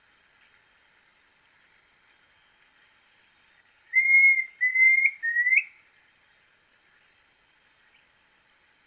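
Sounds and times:
Planalto tyrannulet brevirostris whistled song: 0:03.8 - 0:05.9.

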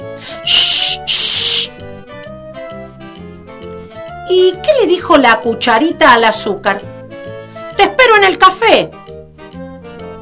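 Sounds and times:
speech: 0:00.2 - 0:01.8, 0:04.3 - 0:07.0, 0:07.8 - 0:09.0
voice imitating soda fizzing into a glass: 0:00.5 - 0:01.7.

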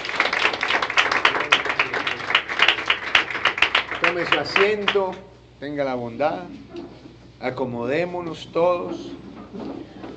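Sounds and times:
congregation applauding during a church service: 0:00.0 - 0:05.3
speech: 0:04.1 - 0:10.0.

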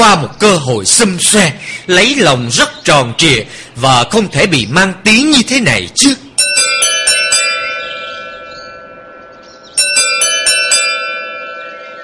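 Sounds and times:
speech: 0:00.0 - 0:06.2
doorbell ringing at an iron-barred gate: 0:06.4 - 0:12.0.

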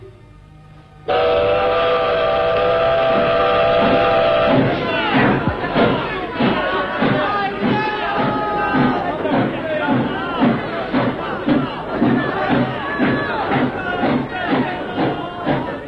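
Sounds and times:
steam train whistle at departure: 0:01.0 - 0:08.9
steam train puffing as it moves off: 0:01.1 - 0:15.8.

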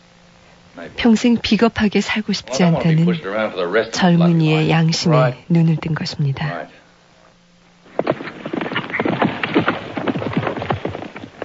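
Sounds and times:
speech: 0:00.8 - 0:06.8
horse hooves clattering during a horse-riding demonstration at a military volunteer enlistment office: 0:07.8 - 0:11.4.

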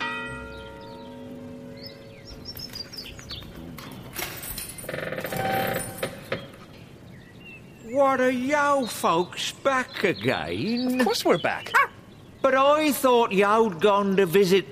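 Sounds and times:
gate bell rung to summon the gatekeeper: 0:00.0 - 0:01.8
speech: 0:08.0 - 0:14.7.

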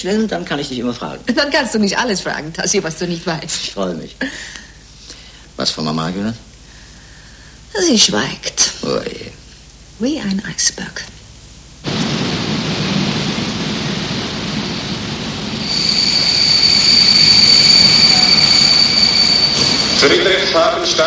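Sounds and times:
speech: 0:00.0 - 0:04.6, 0:05.6 - 0:06.4, 0:07.8 - 0:09.4, 0:10.0 - 0:11.2, 0:20.0 - 0:21.0
train pulling into a terminus station rumbling: 0:11.9 - 0:21.0
train clatter: 0:14.5 - 0:21.0
train wheel-and-brake squeal: 0:15.6 - 0:20.6.

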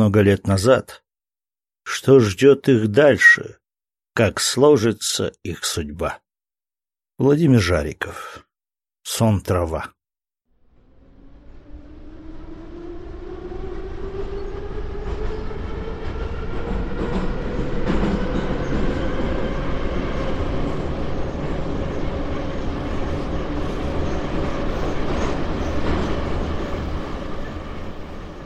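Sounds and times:
speech: 0:00.0 - 0:01.0, 0:01.8 - 0:03.6, 0:04.2 - 0:06.2, 0:07.2 - 0:08.4, 0:09.0 - 0:10.0
subway car rushing through a tunnel: 0:10.6 - 0:28.4.

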